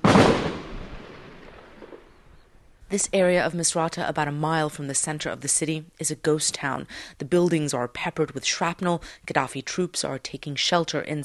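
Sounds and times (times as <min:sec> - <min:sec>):
heavy blast from a gun battle: 0:00.0 - 0:02.8
speech: 0:02.9 - 0:11.2.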